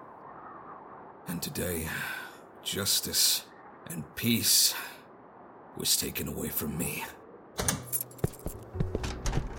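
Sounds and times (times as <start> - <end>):
speech: 1.4 - 5.0, 5.8 - 7.8
keys jingling: 7.7 - 9.4.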